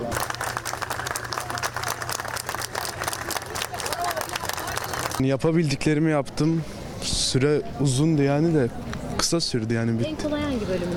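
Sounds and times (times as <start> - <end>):
crowd applauding outdoors greeting students leaving exam: 0.0 - 5.2
murmur of voices and bustle: 0.0 - 10.9
speech: 5.2 - 10.9.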